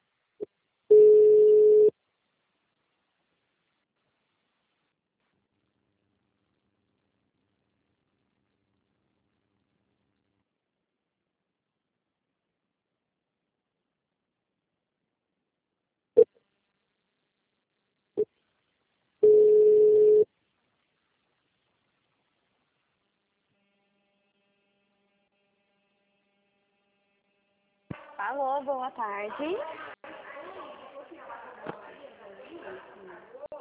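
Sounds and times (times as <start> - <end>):
ringback tone of a phone call ringing out: 0.9 - 1.9, 19.2 - 20.3
speech: 28.2 - 29.9.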